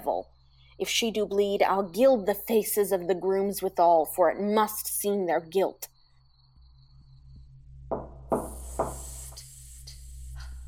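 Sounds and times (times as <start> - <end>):
speech: 0.0 - 5.9
low constant hum: 0.0 - 10.6
knocking on a door: 7.9 - 9.0.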